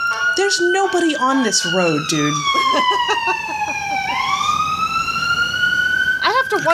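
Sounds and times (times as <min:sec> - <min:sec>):
emergency vehicle siren yelping and wailing as it passes: 0:00.0 - 0:06.7
speech: 0:00.4 - 0:04.0, 0:06.5 - 0:06.7
laughter: 0:02.3 - 0:06.7.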